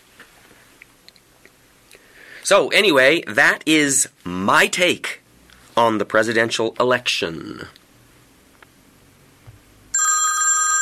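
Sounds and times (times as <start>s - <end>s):
speech: 2.5s - 5.2s, 5.8s - 7.8s
telephone ringing: 9.9s - 10.8s.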